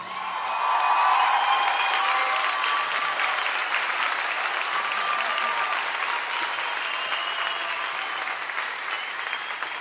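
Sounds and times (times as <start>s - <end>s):
large audience applause: 0.0s - 9.7s
people cheering: 0.0s - 9.7s
faint whistles: 6.6s - 7.8s, 8.8s - 9.7s.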